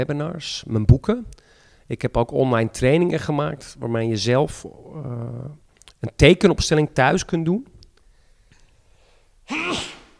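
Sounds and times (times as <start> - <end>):
speech: 0.0 - 7.7
person sneezing: 9.5 - 10.1.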